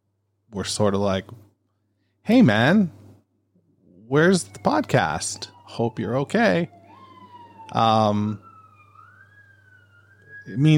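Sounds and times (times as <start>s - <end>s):
speech: 0.5s - 1.5s, 2.3s - 3.0s, 4.1s - 6.8s, 7.7s - 8.4s, 10.4s - 10.7s
emergency vehicle sirens wailing: 3.8s - 10.7s.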